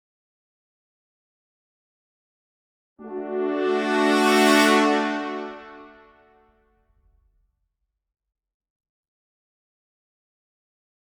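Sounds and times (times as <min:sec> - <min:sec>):
horn note: 0:03.0 - 0:06.2.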